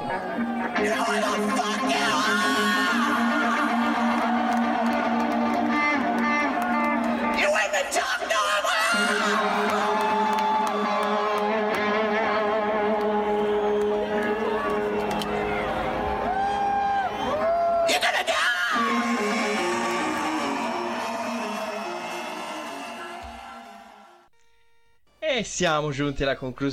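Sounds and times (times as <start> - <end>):
large crowd cheering at a live rock concert: 0.0 - 24.3
speech: 0.8 - 1.7, 25.6 - 26.7.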